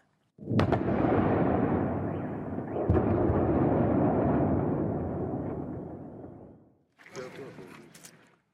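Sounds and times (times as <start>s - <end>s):
bombardment blast in Kyiv with long rumbling roar: 0.5s - 6.6s.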